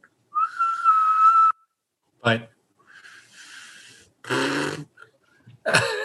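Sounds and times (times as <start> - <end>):
person whistling a sustained note on an inhaled breath: 0.4 - 1.6
speech: 2.2 - 2.5.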